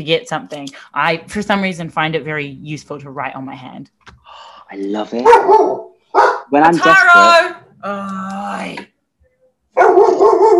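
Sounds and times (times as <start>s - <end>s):
speech: 0.0s - 8.9s, 9.8s - 10.5s
dog barking: 5.2s - 6.5s, 9.8s - 10.5s.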